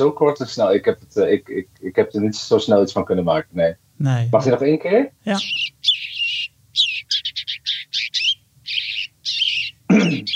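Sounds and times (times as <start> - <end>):
speech: 0.0 - 5.6
house sparrow chirping: 5.4 - 10.3.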